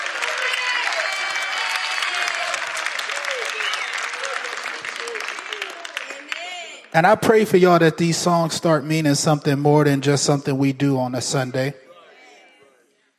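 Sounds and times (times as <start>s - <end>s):
church audience applause during worship: 0.0s - 6.9s
scattered cheers and voices: 0.0s - 7.0s
speech: 6.9s - 11.8s.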